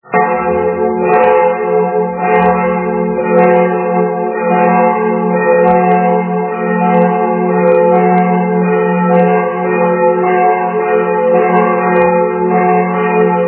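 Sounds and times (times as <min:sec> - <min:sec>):
church bells in Lenzkirch: 0:00.0 - 0:13.4.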